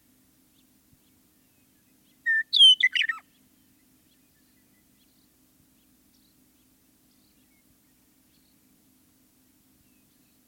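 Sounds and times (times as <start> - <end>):
Western meadowlark song: 0.0 - 10.4.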